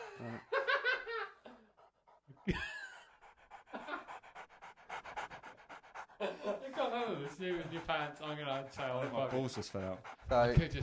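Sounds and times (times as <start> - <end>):
laughter: 0.0 - 4.4, 6.0 - 9.9
speech: 0.2 - 0.5, 2.4 - 2.7, 6.2 - 10.8
person imitating a dog panting: 1.7 - 10.8.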